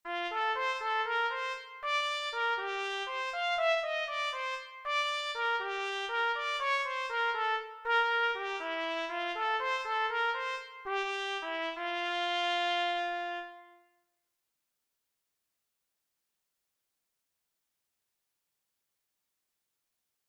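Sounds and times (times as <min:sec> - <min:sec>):
trumpet: 0:00.1 - 0:14.0.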